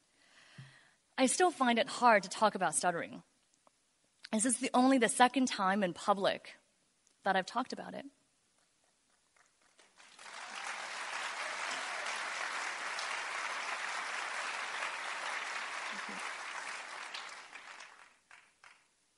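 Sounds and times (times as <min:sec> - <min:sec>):
speech: 0:01.2 - 0:03.3, 0:04.3 - 0:06.6, 0:07.2 - 0:08.2
crowd applauding: 0:09.4 - 0:18.9.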